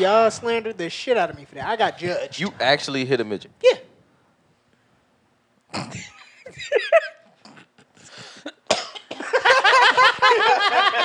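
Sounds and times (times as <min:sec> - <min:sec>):
speech: 0:00.0 - 0:03.9, 0:05.7 - 0:07.1
person coughing: 0:08.6 - 0:09.4
laughter: 0:09.2 - 0:11.0.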